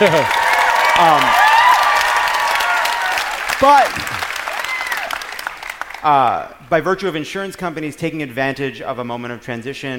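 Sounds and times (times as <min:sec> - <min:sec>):
speech: 0:00.0 - 0:00.4, 0:01.0 - 0:01.4, 0:03.6 - 0:04.2, 0:06.0 - 0:09.9
voices cheering and whooping: 0:00.0 - 0:05.4
crowd clapping: 0:00.0 - 0:06.4.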